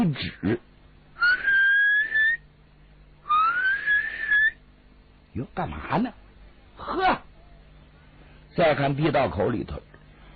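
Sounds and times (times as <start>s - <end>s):
speech: 0.0s - 0.7s, 5.4s - 6.2s, 6.8s - 7.2s, 8.6s - 9.9s
old Taoist nun mouth whistling while climbing out of a tunnel: 1.2s - 2.4s, 3.2s - 4.6s.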